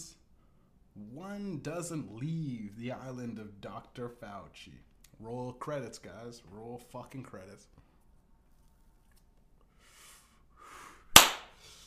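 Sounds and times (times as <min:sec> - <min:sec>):
speech: 0:01.0 - 0:07.8
hand slapping skin: 0:11.1 - 0:11.5.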